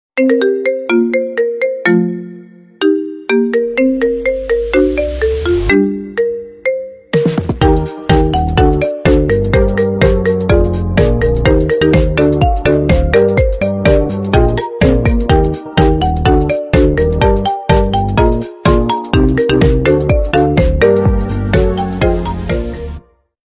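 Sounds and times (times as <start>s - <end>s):
marimba ringtone remix: 0.2s - 23.0s.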